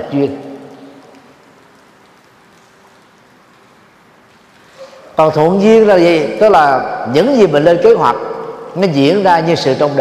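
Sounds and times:
speech: 0.0s - 0.4s, 5.2s - 10.0s
heavy rain pouring: 0.0s - 7.6s.

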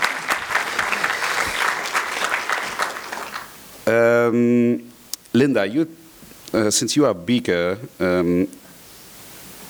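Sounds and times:
audience applause for contestants of a season final: 0.0s - 3.8s
laughter: 0.0s - 4.9s
speech: 3.9s - 8.6s.

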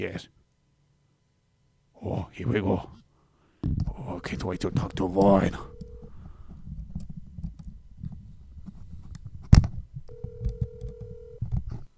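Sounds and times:
speech: 0.0s - 0.4s, 2.0s - 3.0s, 3.6s - 5.7s
telephone click: 3.6s - 11.9s.

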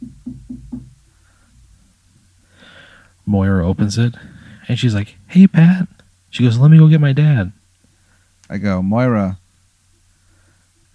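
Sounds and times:
knocking on a neighbor's door: 0.0s - 1.0s
speech: 3.3s - 7.6s, 8.5s - 9.4s.

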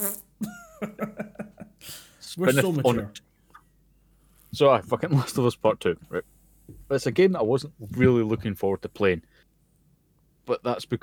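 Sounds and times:
person making a blubbery raspberry-style fart noise with the mouth: 0.0s - 0.6s
laughter: 0.4s - 1.8s
speech: 2.4s - 3.2s, 4.5s - 6.3s, 6.9s - 9.5s, 10.5s - 11.0s.

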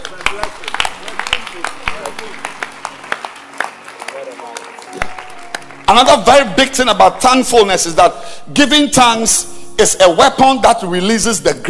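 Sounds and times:
crowd clapping hands: 0.0s - 8.0s
speech: 5.9s - 11.6s.

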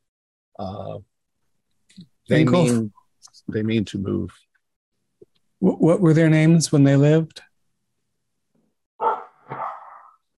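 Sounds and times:
speech: 0.6s - 1.1s, 1.9s - 4.5s, 5.6s - 7.5s
dog barking: 9.0s - 10.2s.

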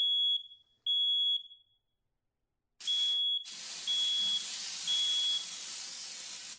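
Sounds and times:
shrill high-pitched fire alarm beeping from something burning in apartment oven: 0.0s - 1.7s, 2.8s - 5.6s.

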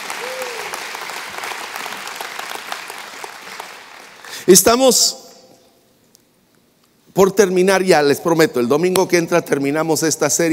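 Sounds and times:
person whooping or cheering: 0.0s - 0.9s
crowd applauding: 0.0s - 4.5s
speech: 4.4s - 5.2s, 7.2s - 10.5s.

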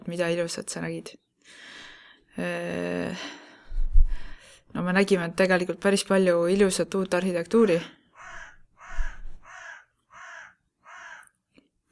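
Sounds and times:
speech: 0.1s - 1.8s, 2.4s - 3.4s, 4.7s - 8.0s
crow cawing: 8.2s - 11.3s.

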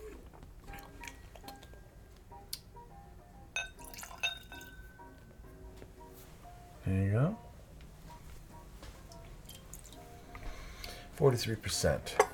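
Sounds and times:
43% whiskey being swirled in a glass: 3.6s - 4.9s
light glassy clinks: 3.6s - 5.0s
speech: 6.9s - 7.4s, 11.2s - 12.2s.

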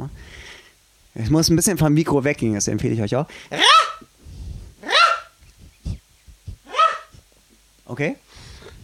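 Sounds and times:
speech: 1.2s - 3.8s, 8.0s - 8.4s
person whistling or voicing calls imitating a Eurasian nuthatch: 3.5s - 4.1s, 4.8s - 7.3s.

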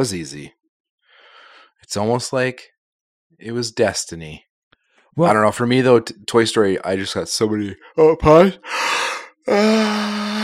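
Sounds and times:
speech: 0.0s - 0.6s, 1.9s - 2.7s, 3.4s - 4.5s, 5.1s - 10.2s
person yawning: 8.8s - 10.4s.

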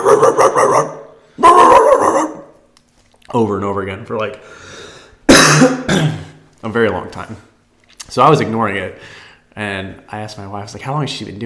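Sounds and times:
dog barking: 0.0s - 2.5s
speech: 3.3s - 4.8s, 5.6s - 7.5s, 8.1s - 11.4s.

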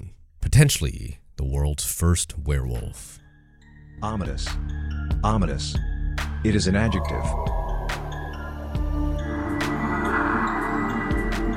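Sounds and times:
speech: 0.6s - 3.2s, 4.0s - 7.6s
slow ominous breathing sound effect: 7.0s - 11.5s.

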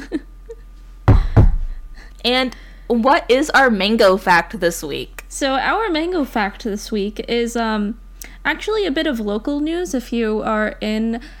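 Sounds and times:
knocking on a wooden surface: 1.1s - 2.0s
speech: 2.2s - 11.3s.

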